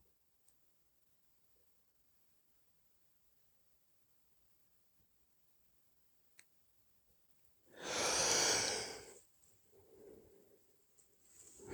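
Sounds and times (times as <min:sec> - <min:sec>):
big yawn: 0:07.8 - 0:09.1.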